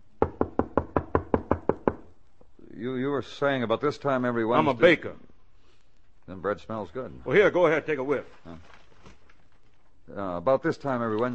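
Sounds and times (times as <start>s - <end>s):
knocking on a door: 0.2s - 2.1s
speech: 2.8s - 5.3s, 6.3s - 8.8s, 10.1s - 11.3s.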